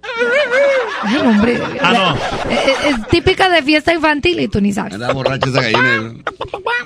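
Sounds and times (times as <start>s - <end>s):
laughter: 0.0s - 6.8s
speech: 0.2s - 6.8s
person imitating a chicken squawking and clucking: 5.3s - 6.8s.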